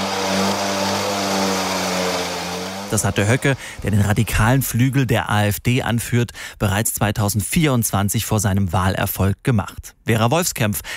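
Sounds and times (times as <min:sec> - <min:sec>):
blue Simson moped engine droning, an East German cult model: 0:00.0 - 0:04.7
speech: 0:02.9 - 0:10.9.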